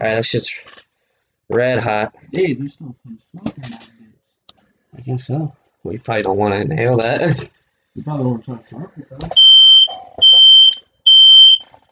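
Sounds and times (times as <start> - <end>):
speech: 0.0 - 0.8, 1.5 - 3.9, 5.0 - 9.4
home fire alarm set off by smoke beeping: 9.3 - 11.7.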